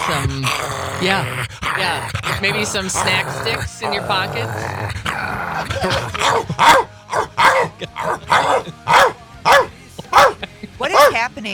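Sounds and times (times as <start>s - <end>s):
dog growling: 0.0s - 11.2s
laughter: 0.0s - 11.4s
speech: 0.1s - 9.1s, 10.9s - 11.5s.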